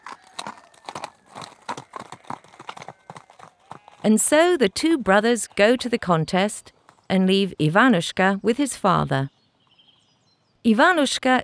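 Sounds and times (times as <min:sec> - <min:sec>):
horses' hooves at a gallop as riders gallop off: 0:00.0 - 0:07.9
speech: 0:04.0 - 0:09.4, 0:10.6 - 0:11.4.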